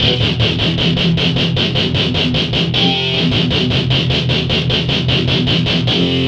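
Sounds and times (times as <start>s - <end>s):
metal guitar: 0.0s - 6.2s.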